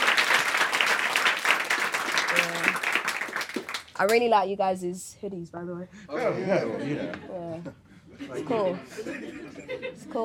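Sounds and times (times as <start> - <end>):
audience applause from a crowd at a live music performance: 0.0 - 4.2
speech: 4.0 - 10.2
laughter: 6.2 - 10.2.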